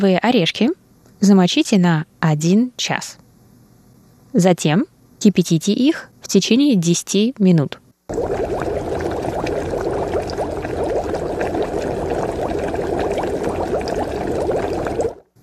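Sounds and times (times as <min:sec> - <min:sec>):
speech: 0:00.0 - 0:03.2, 0:04.3 - 0:08.7
water pouring out like a pot being drained: 0:08.1 - 0:15.3.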